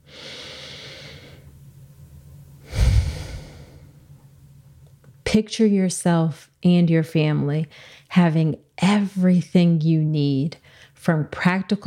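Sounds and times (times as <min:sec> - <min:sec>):
deep breath taken during a calming pause: 0:00.0 - 0:01.5, 0:02.6 - 0:03.9
speech: 0:05.4 - 0:11.8.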